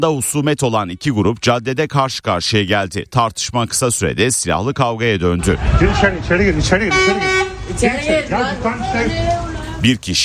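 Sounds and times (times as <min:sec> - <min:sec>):
people's voices on a street during an armed fight: 0:00.0 - 0:10.2
speech: 0:00.0 - 0:10.2
car horns honking on a street during an armed fight: 0:05.8 - 0:09.2.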